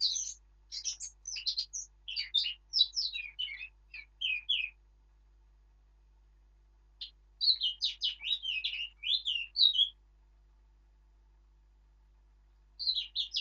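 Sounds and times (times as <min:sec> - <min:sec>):
Eurasian blackcap Sylvia atricapilla warbling song: 0:00.0 - 0:04.8, 0:07.0 - 0:10.0, 0:12.8 - 0:13.3.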